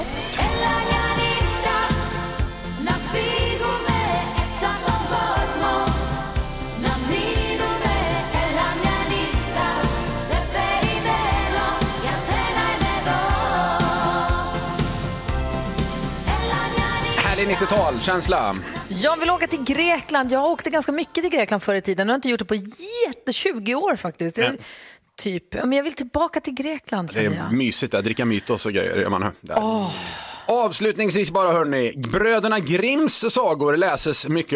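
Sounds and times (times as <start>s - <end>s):
upbeat 1990s Greek pop schlager song: 0.0s - 21.1s, 27.1s - 27.6s
speech: 17.6s - 34.5s.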